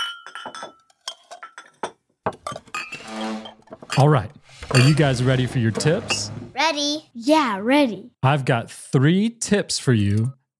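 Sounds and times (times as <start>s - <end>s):
plates and silverware clinking while a family sets the table: 0.0s - 6.4s
speech: 0.5s - 0.8s, 4.0s - 10.5s.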